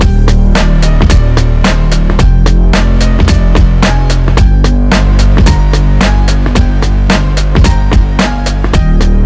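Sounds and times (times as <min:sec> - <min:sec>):
piano tune: 0:00.0 - 0:09.2.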